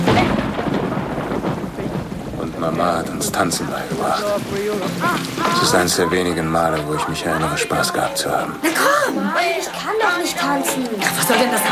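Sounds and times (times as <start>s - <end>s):
steady dense rainfall: 0.0s - 11.7s
deep low rumble: 0.1s - 5.0s
speech: 2.6s - 11.7s
laughter: 4.8s - 10.2s.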